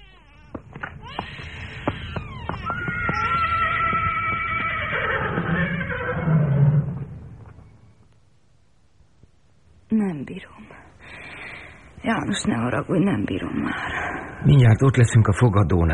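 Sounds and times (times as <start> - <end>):
horse whinnying: 1.0 - 7.2
speech: 12.1 - 15.9.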